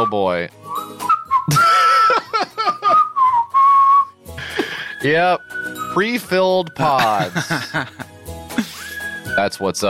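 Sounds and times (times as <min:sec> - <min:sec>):
speech: 0:00.0 - 0:00.7, 0:01.5 - 0:01.7, 0:05.0 - 0:08.1, 0:09.4 - 0:09.8
steady loud high-pitched whistle in a played video: 0:00.0 - 0:01.8, 0:02.8 - 0:04.1, 0:05.0 - 0:06.1, 0:08.7 - 0:09.6
short bursts of laughter-like sounds: 0:01.5 - 0:03.1, 0:04.4 - 0:05.0, 0:07.0 - 0:09.0.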